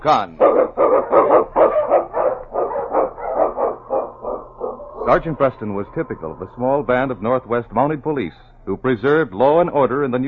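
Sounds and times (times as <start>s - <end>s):
speech: 0.0s - 1.7s, 5.1s - 10.2s
husky sled lead dog barking excitedly: 0.4s - 5.1s.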